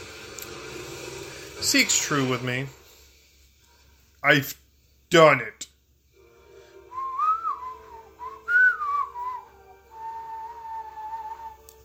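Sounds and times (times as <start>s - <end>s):
speech: 1.6s - 2.8s, 4.2s - 5.6s
person whistling a short wavering melody: 6.9s - 11.8s.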